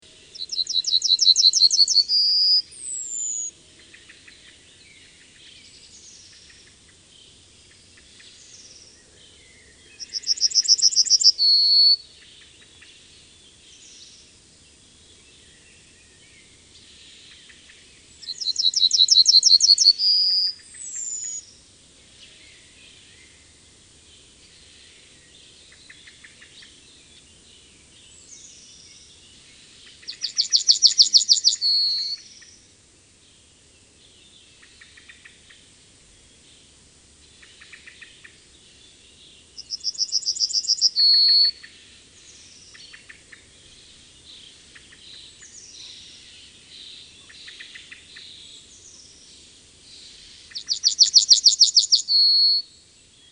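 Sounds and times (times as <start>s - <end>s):
yellowhammer singing: 0.0s - 53.2s.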